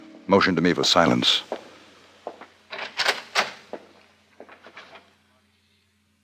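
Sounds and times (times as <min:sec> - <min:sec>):
speech: 0:00.3 - 0:01.6
door opening with scraping and rattling: 0:02.7 - 0:05.1.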